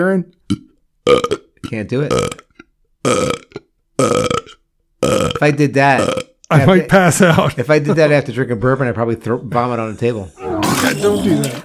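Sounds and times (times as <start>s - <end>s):
speech: 0.0s - 2.4s, 3.0s - 3.4s, 5.0s - 11.6s
loud burps with a rough gurgling tone: 0.5s - 6.4s, 10.4s - 11.6s.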